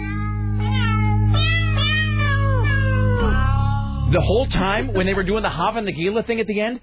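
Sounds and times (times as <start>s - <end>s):
cats meowing a melody in a song: 0.0s - 4.0s
steady musical backing: 0.0s - 6.8s
speech: 4.1s - 6.8s.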